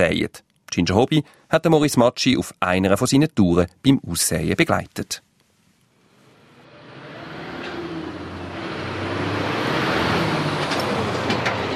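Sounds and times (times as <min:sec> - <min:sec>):
speech: 0:00.0 - 0:05.2
bus rumbling in street traffic: 0:06.1 - 0:11.7
busy street traffic: 0:06.5 - 0:11.7
clatter in street traffic: 0:10.6 - 0:11.7.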